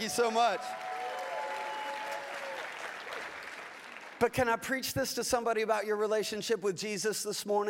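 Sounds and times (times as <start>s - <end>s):
speech: 0.0s - 0.9s, 4.2s - 7.6s
faint whoops: 0.0s - 2.8s
audience applauding: 0.0s - 4.3s.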